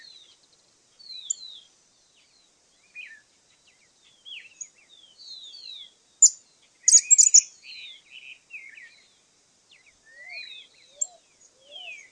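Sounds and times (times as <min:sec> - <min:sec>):
cattle tyrant Machetornis rixosa rixosa calling: 0:02.3 - 0:09.1, 0:09.8 - 0:12.1.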